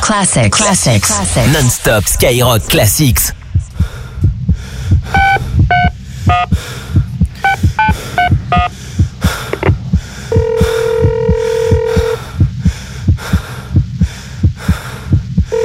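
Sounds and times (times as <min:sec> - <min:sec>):
speech: 0:00.1 - 0:03.4
loud regular heartbeat-like thumping pulse: 0:01.5 - 0:15.6
telephone dialing beeps: 0:05.1 - 0:06.5, 0:07.5 - 0:08.7, 0:10.3 - 0:12.2.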